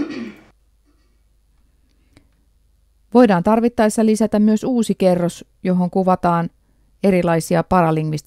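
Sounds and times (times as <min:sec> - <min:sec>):
woman clearing her throat: 0:00.0 - 0:00.5
speech: 0:03.1 - 0:08.2.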